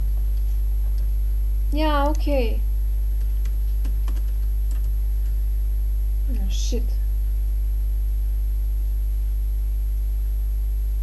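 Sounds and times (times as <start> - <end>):
steady low electrical hum: 0.0 - 11.0
speech: 1.7 - 2.7, 6.5 - 7.0
fingers typing on a computer keyboard: 3.2 - 5.4.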